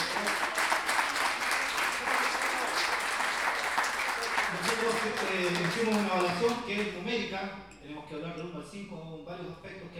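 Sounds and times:
audience applause at an improvised verse-singing tournament: 0.0s - 6.9s
speech: 4.8s - 9.9s.

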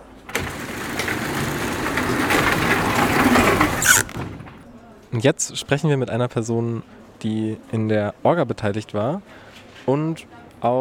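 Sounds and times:
motorised roller door running on the way to an event hall: 0.0s - 4.6s
brief high squeal of a motorised roller door: 3.8s - 4.2s
speech: 5.1s - 10.7s.

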